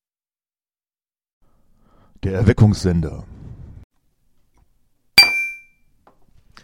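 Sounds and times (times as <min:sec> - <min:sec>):
speech: 0:02.2 - 0:03.4
glasses clinking in a toast: 0:05.2 - 0:05.7.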